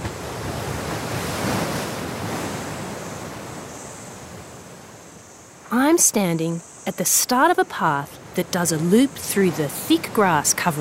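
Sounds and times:
waves breaking against rocks around a treeless grassy island: 0:00.0 - 0:04.8, 0:07.7 - 0:10.8
speech: 0:06.0 - 0:10.8.

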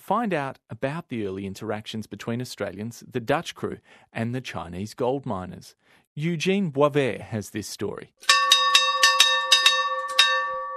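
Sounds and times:
speech: 0:00.1 - 0:08.4
old school bell from a shipwreck ringing at a primary school: 0:08.2 - 0:10.7.

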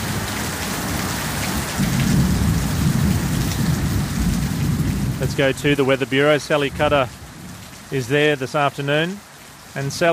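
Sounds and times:
deep roll of thunder rumbling: 0:00.0 - 0:07.7
heavy rain at night in Cape Town: 0:00.0 - 0:10.1
speech: 0:05.2 - 0:07.2, 0:07.9 - 0:10.1.

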